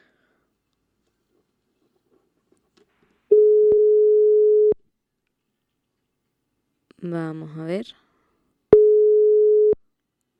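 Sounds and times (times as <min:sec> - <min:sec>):
telephone line tone after a call drops: 0:03.3 - 0:04.8, 0:08.8 - 0:09.8
speech: 0:07.0 - 0:08.0.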